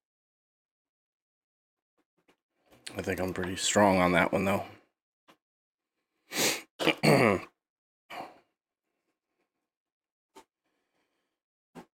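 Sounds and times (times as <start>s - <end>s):
speech: 2.9s - 4.8s, 6.8s - 7.5s
person coughing harshly: 6.8s - 7.5s.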